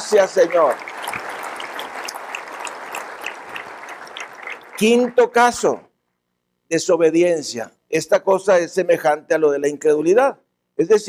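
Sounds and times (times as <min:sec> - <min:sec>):
crowd clapping: 0:00.0 - 0:05.6
speech: 0:00.1 - 0:00.9, 0:04.8 - 0:05.9, 0:06.7 - 0:11.0.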